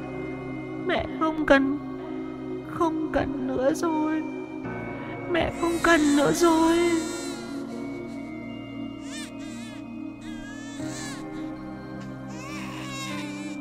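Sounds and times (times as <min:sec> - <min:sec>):
speech: 0:00.9 - 0:01.9, 0:02.8 - 0:04.4, 0:05.3 - 0:07.2
baby crying shrilly at night: 0:05.5 - 0:13.5.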